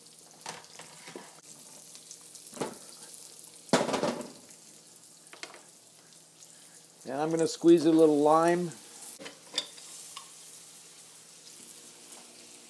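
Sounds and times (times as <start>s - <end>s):
frying and stirring in a wok: 0.0s - 12.6s
walnuts and garlic sizzling in a wok: 0.0s - 12.6s
speech: 7.1s - 8.8s.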